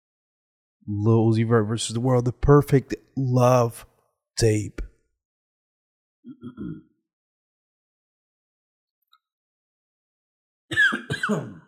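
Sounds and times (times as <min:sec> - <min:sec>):
speech: 0:00.9 - 0:04.9, 0:06.4 - 0:06.9, 0:10.8 - 0:11.6
person coughing: 0:10.7 - 0:11.6.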